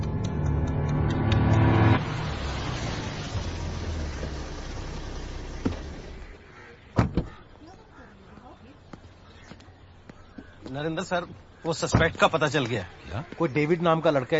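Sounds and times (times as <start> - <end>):
car engine revving: 0.0 - 6.4
road noise: 0.0 - 14.3
car doors shutting: 1.0 - 6.3
speech: 10.8 - 14.3.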